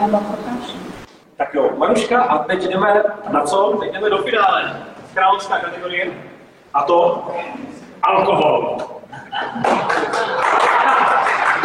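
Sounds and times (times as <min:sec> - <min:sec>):
speech: 0:00.0 - 0:00.8, 0:01.5 - 0:10.3
laughter: 0:09.1 - 0:11.6
crowd applauding: 0:09.4 - 0:11.6.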